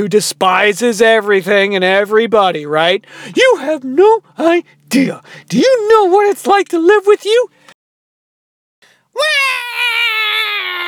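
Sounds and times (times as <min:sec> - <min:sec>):
speech: 0:00.0 - 0:07.6
baby girl crying, woken by shouting: 0:09.2 - 0:10.8.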